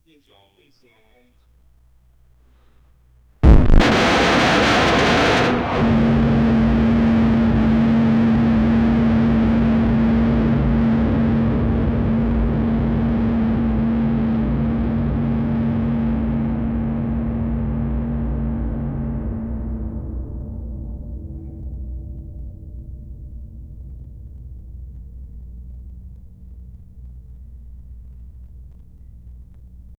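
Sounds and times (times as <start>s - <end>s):
futuristic deep distorted cannon blast: 3.4s - 29.9s.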